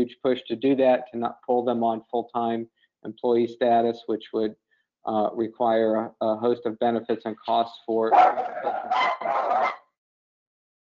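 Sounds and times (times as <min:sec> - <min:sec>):
speech: 0:00.0 - 0:09.4
dogs barking: 0:08.1 - 0:09.8.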